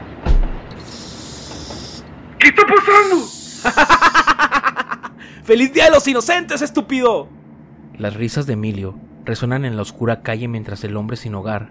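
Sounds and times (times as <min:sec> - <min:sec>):
aerosol spray paint bursting from a trap: 0:00.8 - 0:02.1, 0:02.9 - 0:04.4
speech: 0:02.4 - 0:03.9, 0:05.5 - 0:07.4, 0:08.0 - 0:11.6
laughter: 0:03.6 - 0:05.2.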